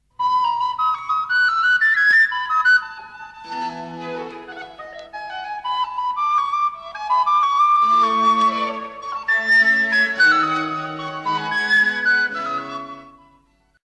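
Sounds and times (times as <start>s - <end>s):
recorder playing: 0.0s - 13.8s.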